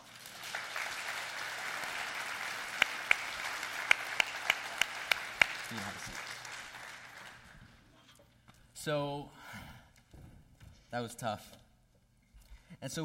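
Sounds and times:
audience applause for a speaker: 0.0 - 7.9
speech: 5.7 - 6.4, 8.8 - 9.6, 10.9 - 11.6, 12.8 - 13.0.

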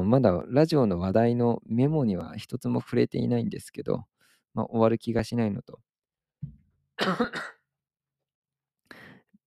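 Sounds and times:
speech: 0.0 - 7.6
person clearing throat: 7.0 - 7.6
person coughing harshly: 7.0 - 7.7.

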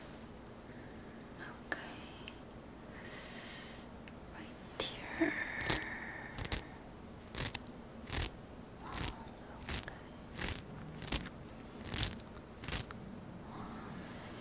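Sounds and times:
low steady hum: 0.0 - 14.3
razor strokes scraping across stubble at a barber shop: 5.6 - 13.0.

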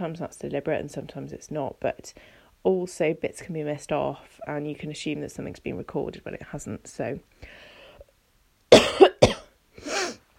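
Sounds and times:
speech: 0.0 - 7.7
person coughing harshly: 8.7 - 10.2.

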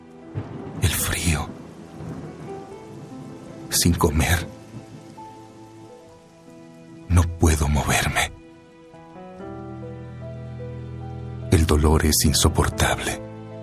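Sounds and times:
crackling thunder bursts: 0.0 - 8.4
rain pattering: 0.0 - 10.4, 11.1 - 13.6
speech: 3.7 - 4.6, 11.7 - 13.3.

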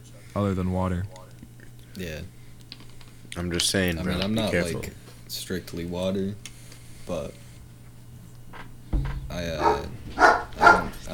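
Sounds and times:
low hum: 0.0 - 11.1
speech: 0.4 - 1.2, 2.0 - 2.4, 3.4 - 6.5, 7.1 - 7.4, 9.4 - 10.3
dog barking: 9.5 - 11.0.

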